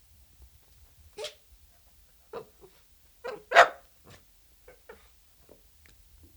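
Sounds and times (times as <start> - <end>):
Dachshund barking: 1.2 - 1.4, 2.3 - 3.9.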